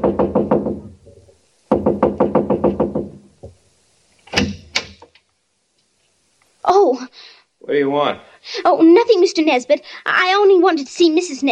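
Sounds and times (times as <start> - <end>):
knocking on a quiet house door: 0.0 - 3.6
speech: 7.8 - 11.5.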